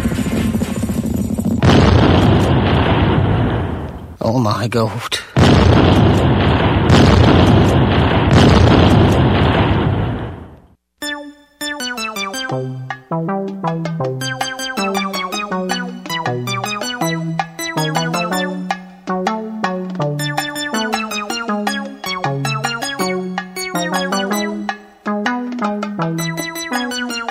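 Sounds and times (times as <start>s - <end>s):
heavy cannon fire barrage: 0.0s - 4.2s, 5.4s - 10.6s
speech: 4.4s - 6.2s
tonal music: 11.0s - 27.3s.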